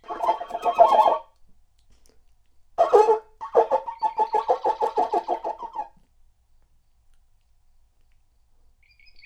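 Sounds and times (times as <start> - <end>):
bird uttering harsh chattering notes: 0.0 - 1.2, 2.8 - 5.9.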